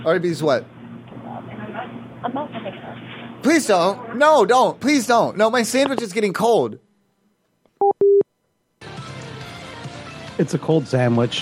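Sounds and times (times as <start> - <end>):
speech: 0.0 - 0.8, 2.2 - 6.8, 10.4 - 11.4
telephone touch-tone beeps while dialing: 7.8 - 8.2.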